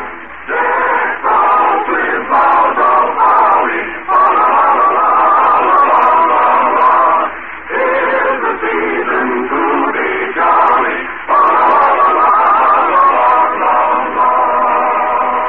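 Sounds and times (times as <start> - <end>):
group of children singing a Christmas song together: 0.5 - 15.4.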